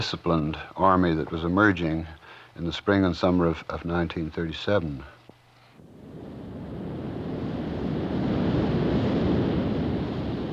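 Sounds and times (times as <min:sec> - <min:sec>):
speech: 0:00.0 - 0:05.2
wind over the Atlantic Ocean heard from a ship: 0:00.0 - 0:10.5
Atlantic Ocean waves heard from a ship: 0:06.2 - 0:10.5.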